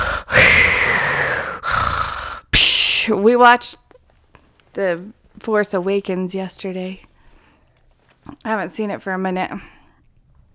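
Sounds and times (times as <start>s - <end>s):
voice imitating heavy mechanical respirator breathing: 0.0s - 3.1s
speech: 3.1s - 3.8s, 4.8s - 7.1s, 8.3s - 9.8s.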